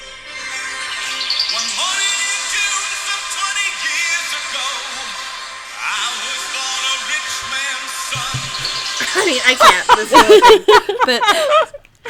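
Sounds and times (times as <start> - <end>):
1980s pop song about freedom with melodic vocals: 0.0 - 12.0
laughter: 8.2 - 12.0
speech: 9.5 - 11.8.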